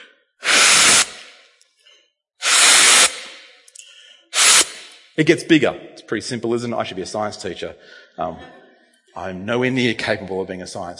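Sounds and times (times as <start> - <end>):
person blowing hard into a balloon: 0.4 - 1.5, 2.4 - 3.6, 4.3 - 5.0
speech: 5.2 - 8.6, 9.2 - 10.9.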